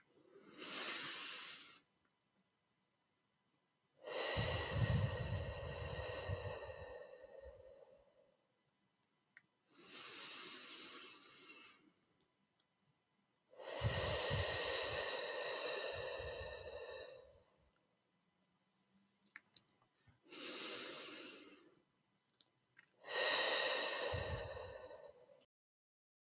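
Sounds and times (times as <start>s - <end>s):
slow deep breathing, inhales and exhales: 4.0s - 8.4s, 9.7s - 12.0s, 13.6s - 17.6s, 20.3s - 21.8s, 23.0s - 25.5s.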